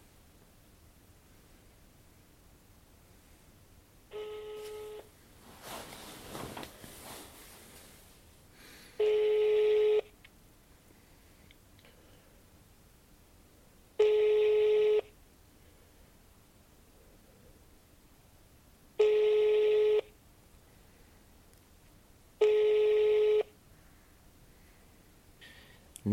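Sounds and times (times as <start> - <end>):
buzzy telephone ringback tone of an unanswered call: 4.1 - 5.1, 9.0 - 10.1, 14.0 - 15.1, 19.0 - 20.1, 22.4 - 23.5.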